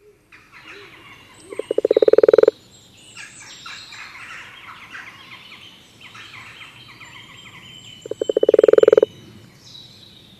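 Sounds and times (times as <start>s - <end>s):
faint birdsong: 0.0s - 10.3s
common toad croaking: 1.5s - 2.6s, 8.1s - 9.1s.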